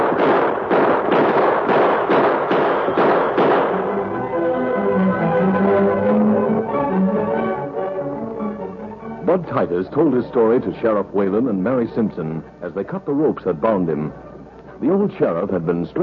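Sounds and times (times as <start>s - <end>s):
gunshots in a western shootout: 0.0s - 4.0s
sustained tonal sound: 3.8s - 9.4s
speech: 9.6s - 16.0s.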